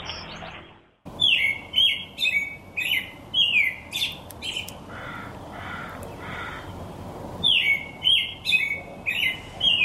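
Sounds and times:
robins chirping: 1.1s - 9.8s
crow cawing: 4.9s - 6.7s.

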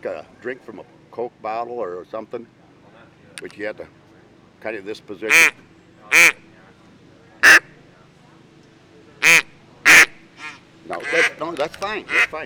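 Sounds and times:
speech: 0.0s - 2.6s, 3.4s - 4.0s, 4.6s - 6.4s, 11.6s - 12.4s
handheld duck call with mouthpiece and reed quacking: 5.3s - 6.4s, 7.4s - 7.7s, 9.2s - 11.4s, 12.1s - 12.4s.

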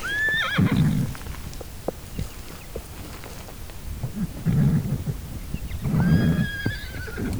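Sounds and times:
wild horses whinnying in the mountainous Virginia range: 0.0s - 1.6s, 4.1s - 7.3s
rustling movement outdoors: 0.0s - 4.4s
wild horse hoof clops moving up a hill: 0.0s - 7.3s
wild horses snorting: 0.0s - 7.3s.

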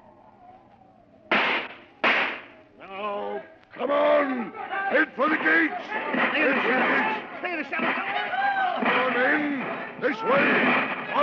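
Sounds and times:
gunshots fired as a signal when the guards change: 1.3s - 2.6s, 6.1s - 11.2s
speech: 3.8s - 11.2s.

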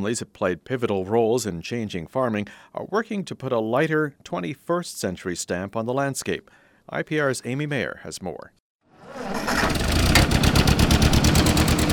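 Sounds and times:
speech: 0.0s - 9.6s
1947 Ford 2N tractor engine cranking and idling on a farm in Carlisle Iowa: 9.3s - 11.9s.

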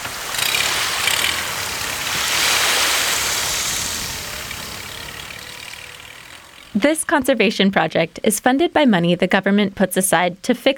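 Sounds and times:
water rushing and splashing around the hull in choppy waves: 0.0s - 6.9s
small boat engine droning: 0.0s - 8.3s
speech: 6.8s - 10.7s.

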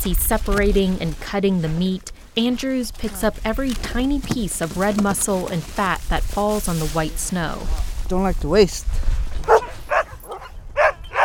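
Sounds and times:
speech: 0.0s - 9.2s
sled dogs barking: 9.4s - 11.2s.

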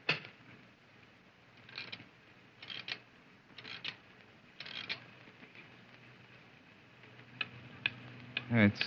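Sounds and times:
stopped clock being rewound with ratcheting clicks: 1.6s - 2.0s, 2.6s - 3.0s, 3.6s - 4.0s, 4.6s - 5.0s
speech: 8.5s - 8.8s.

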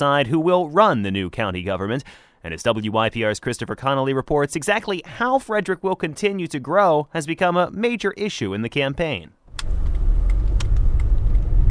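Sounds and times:
speech: 0.0s - 9.9s
car driving along a rural two-lane country road: 9.6s - 11.6s.

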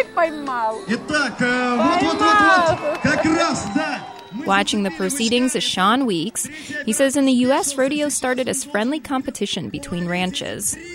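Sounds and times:
speech: 0.0s - 10.9s
rodeo crowd cheering in arena: 0.6s - 6.5s.

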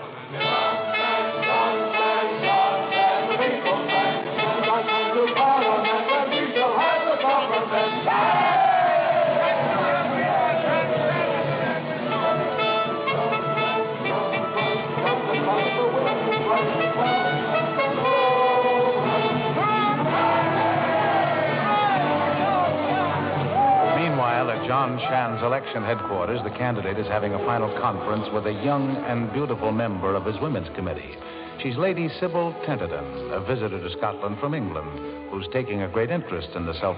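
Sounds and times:
crowd chanting: 0.4s - 24.1s
large election-day crowd cheering and shouting on the march: 6.9s - 13.3s, 18.0s - 26.9s
speech: 24.9s - 36.9s.

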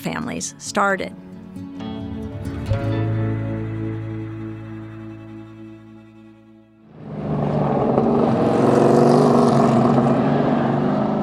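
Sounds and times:
speech: 0.1s - 1.6s
steady droning engine hum: 2.7s - 11.2s
race cars driving laps on a speedway: 6.9s - 11.2s.

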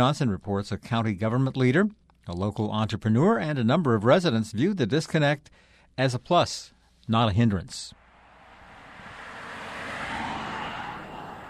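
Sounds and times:
speech: 0.0s - 8.0s
vehicle passing on a two-lane state highway: 8.0s - 11.4s.

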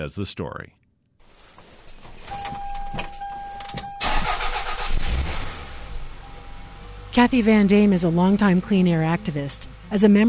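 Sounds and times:
speech: 0.0s - 0.8s, 7.2s - 10.2s
car engine idling: 1.9s - 10.2s
car ignition chime: 2.3s - 4.8s.

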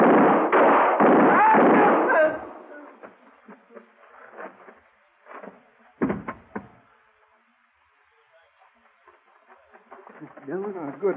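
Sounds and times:
gunshots in a Western-style showdown: 0.0s - 2.7s.

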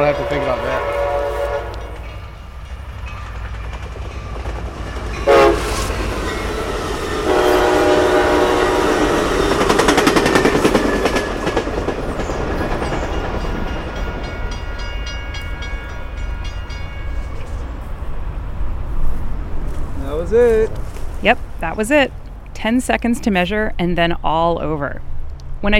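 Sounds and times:
speech: 0.0s - 1.0s, 21.2s - 25.7s
train horn blaring: 0.0s - 2.5s, 5.1s - 10.8s
train roaring past at speed: 0.0s - 25.7s.

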